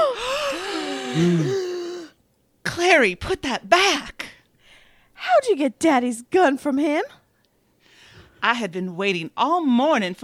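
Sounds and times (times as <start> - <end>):
several people gasping in shock: 0.2 - 2.1
speech: 1.2 - 1.6, 2.8 - 4.2, 5.2 - 7.2, 8.4 - 10.2.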